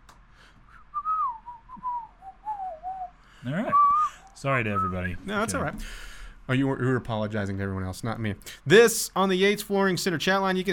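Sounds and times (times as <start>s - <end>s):
person whistling a movie whistle tune: 0.7s - 5.2s
speech: 3.4s - 10.7s.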